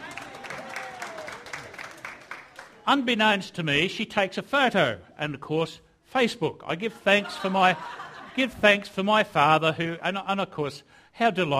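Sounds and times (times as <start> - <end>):
audience applause: 0.0 - 2.8
speech: 2.9 - 11.5
laughter: 6.8 - 8.9.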